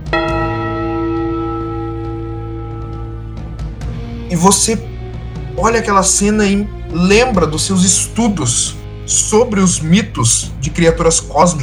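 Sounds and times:
heavy tolling bell strike: 0.0s - 4.8s
low rumbling drone: 0.0s - 5.6s
speech: 4.3s - 4.9s, 5.6s - 11.6s.

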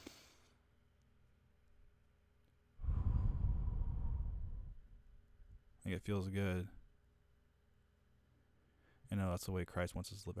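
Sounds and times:
deep breath: 2.8s - 4.9s
speech: 5.9s - 6.8s, 9.1s - 10.3s.

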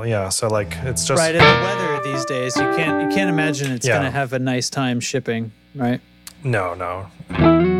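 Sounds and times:
speech: 0.0s - 7.6s
distorted electric guitar chord with pickup switching: 0.7s - 4.0s.

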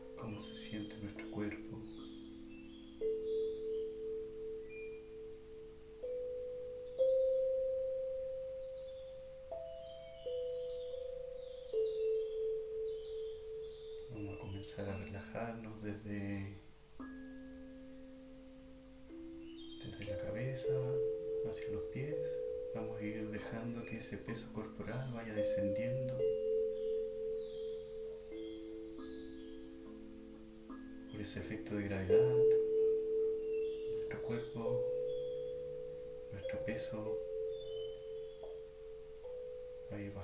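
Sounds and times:
short bursts of speech: 0.0s - 2.0s, 14.1s - 16.7s, 19.8s - 26.3s, 31.1s - 32.7s, 33.9s - 35.0s, 36.3s - 37.4s, 39.9s - 40.2s
singing bowls struck and ringing: 0.0s - 40.2s.

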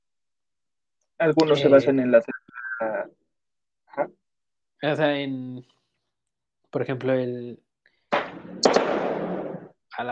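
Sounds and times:
speech: 1.2s - 3.2s, 4.0s - 4.2s, 4.8s - 5.8s, 6.7s - 7.6s
loud burst outdoors: 8.1s - 9.7s
sharp cracking pops: 8.1s - 9.7s.

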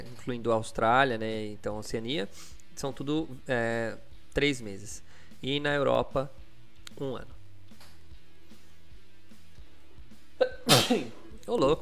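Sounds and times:
speech: 0.2s - 7.4s, 10.6s - 11.8s
single sharp sneeze: 10.4s - 11.3s.

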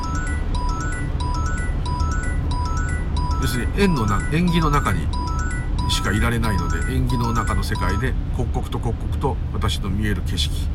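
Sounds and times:
radar detector beeping inside a moving car: 0.0s - 8.2s
low engine rumble inside a moving car: 0.0s - 10.7s
speech: 3.4s - 5.2s, 5.9s - 10.7s.

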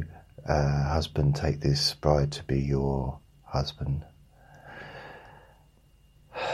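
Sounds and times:
speech: 0.0s - 4.1s
soft airy breath: 4.3s - 6.5s.

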